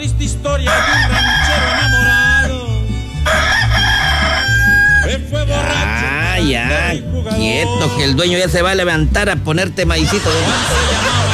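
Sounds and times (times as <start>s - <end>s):
speech: 0.0s - 1.4s, 6.4s - 11.3s
rooster crowing: 0.7s - 5.2s
laughter: 9.8s - 11.3s.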